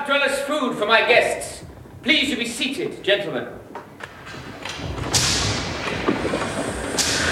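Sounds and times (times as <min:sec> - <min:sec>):
speech: 0:00.1 - 0:03.6
guards' whips lashing workers: 0:04.7 - 0:05.9, 0:06.9 - 0:07.3.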